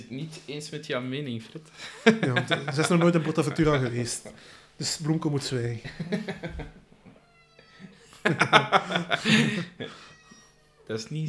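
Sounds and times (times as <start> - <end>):
speech: 0.1 - 6.8, 8.2 - 10.2, 10.9 - 11.2
person laughing: 1.8 - 4.4, 5.9 - 6.8, 8.2 - 10.0
cat meowing loudly and drawn-out: 6.5 - 11.2.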